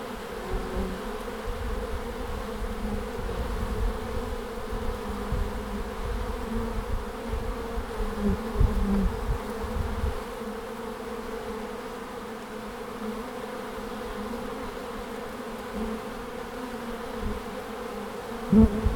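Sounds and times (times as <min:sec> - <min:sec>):
bees buzzing at the end of March in Langel Köln Deutschland: 0:00.0 - 0:18.9.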